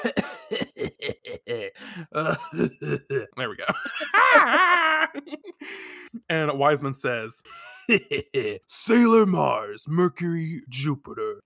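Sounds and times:
speech: 0.0 - 0.3, 2.2 - 4.8, 6.6 - 11.4
person clearing throat with rough raspy bursts: 0.0 - 3.4
laughter: 0.0 - 6.0, 7.5 - 8.7.

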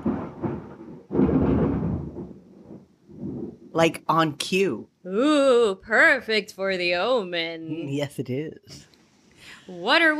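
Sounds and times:
thunder during late afternoon rainstorm: 0.0 - 3.9
speech: 3.8 - 8.9, 9.7 - 10.1.

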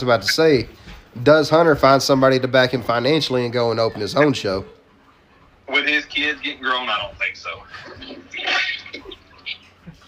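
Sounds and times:
speech: 0.0 - 4.8, 5.7 - 9.1
toilet flushing: 7.7 - 9.2.

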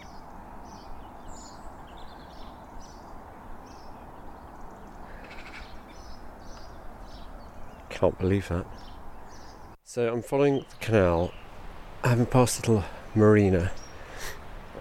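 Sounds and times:
song thrush singing from a treetop beside a canal: 0.0 - 14.7
speech: 8.0 - 8.9, 10.0 - 11.4, 12.0 - 14.4.

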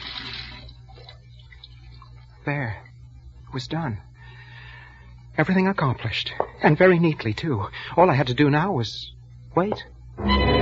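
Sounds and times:
tap water running into sink: 0.0 - 2.2
speech: 2.4 - 2.9, 3.5 - 4.1, 5.4 - 10.5.

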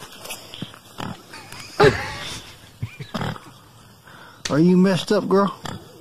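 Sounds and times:
pig snorting: 0.6 - 1.3, 2.2 - 3.6
pigs grunting and squealing, one intoxicated: 0.9 - 3.8, 5.4 - 5.9
speech: 1.8 - 2.1, 4.5 - 5.6.

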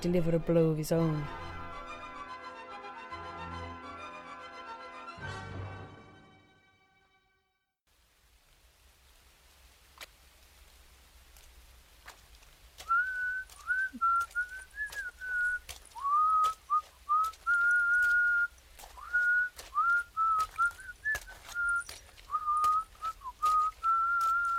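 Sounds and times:
speech: 0.0 - 1.5
crackle: 7.9 - 24.5
person whistling a wandering tune: 12.8 - 24.5.

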